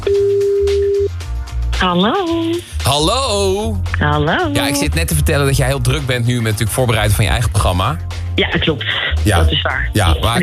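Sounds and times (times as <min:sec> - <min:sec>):
telephone tone while placing a call: 0:00.0 - 0:01.2
speech: 0:01.8 - 0:10.4.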